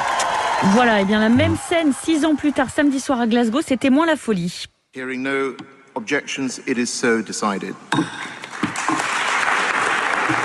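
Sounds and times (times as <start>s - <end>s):
audience applause at a climate conference in Glasgow: 0.0s - 3.0s, 8.4s - 10.4s
speech: 0.6s - 8.3s.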